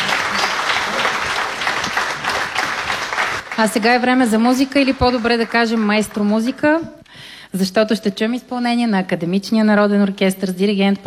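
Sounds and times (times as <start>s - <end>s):
dense audience applause: 0.0s - 6.7s
speech: 3.6s - 11.0s.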